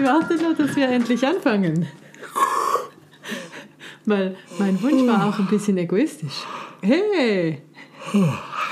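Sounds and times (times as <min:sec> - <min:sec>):
speech: 0:00.0 - 0:02.4, 0:04.0 - 0:08.5
person yawning: 0:02.2 - 0:03.0, 0:08.0 - 0:08.7.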